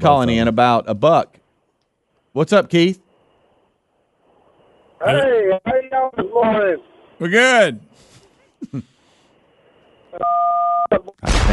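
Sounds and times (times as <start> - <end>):
speech: 0.0 - 1.4, 2.4 - 3.0, 5.0 - 8.9, 10.2 - 11.5
quiet phone line noise: 10.1 - 11.1.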